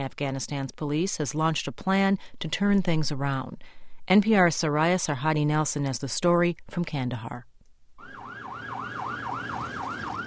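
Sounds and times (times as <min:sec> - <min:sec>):
speech: 0:00.0 - 0:07.5
sirens on a convoy of American Humvees yelping: 0:08.0 - 0:10.2.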